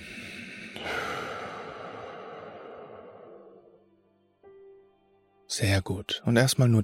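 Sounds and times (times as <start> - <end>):
slow deep breathing during a guided meditation: 0.0 - 3.9
speech: 5.6 - 6.8.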